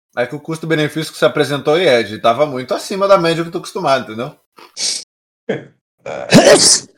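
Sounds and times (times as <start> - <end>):
speech: 0.1 - 6.9
sneeze: 6.1 - 6.9.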